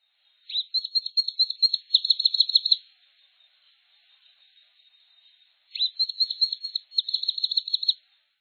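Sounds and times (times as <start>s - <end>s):
balanca-rabo-de-chapeu-preto calling: 0.5s - 2.8s, 5.7s - 8.0s.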